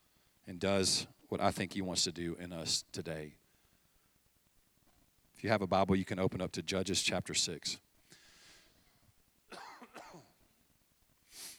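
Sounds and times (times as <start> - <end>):
faint room hiss: 0.0 - 11.5
speech: 0.5 - 3.4, 5.4 - 7.9
harsh coughs: 9.5 - 10.4.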